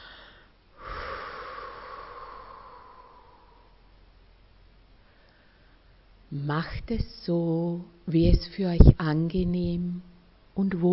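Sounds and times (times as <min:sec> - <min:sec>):
relaxed exhale through the mouth: 0:00.0 - 0:03.9
speech: 0:06.3 - 0:10.9.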